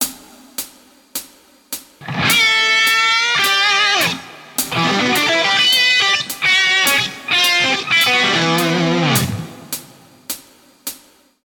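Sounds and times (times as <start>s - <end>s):
guitar licks: 2.0s - 9.8s.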